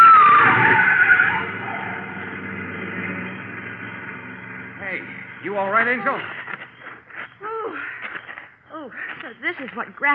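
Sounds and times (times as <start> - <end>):
car speeding and skidding past with tire squeal: 0.0 - 6.8
speech: 5.6 - 6.4, 9.3 - 10.1.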